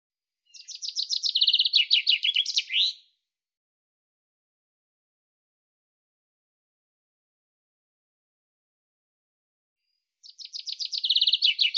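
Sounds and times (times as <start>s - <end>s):
common chaffinch song phrase: 0.4s - 3.2s, 9.8s - 11.7s.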